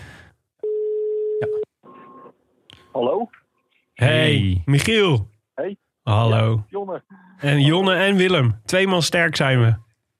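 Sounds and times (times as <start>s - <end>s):
telephone dialing tone while placing a call: 0.6s - 2.3s
speech: 1.4s - 1.6s, 2.9s - 3.4s, 4.0s - 9.9s.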